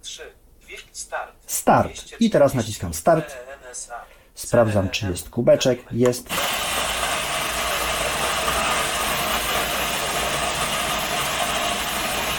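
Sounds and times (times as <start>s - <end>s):
speech: 0.0s - 0.4s, 1.0s - 6.9s
espresso machine's built-in coffee grinder grinding with a whirr and rattle: 6.3s - 12.3s.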